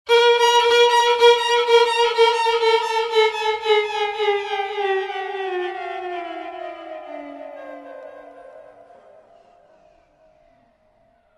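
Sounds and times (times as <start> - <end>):
violin: 0.1 - 7.3.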